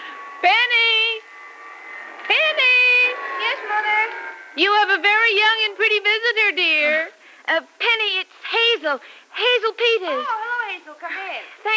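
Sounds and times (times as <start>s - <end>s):
vacuum cleaner running: 0.0s - 5.6s
faint hum: 0.0s - 11.7s
speech: 0.4s - 0.8s, 4.6s - 11.7s.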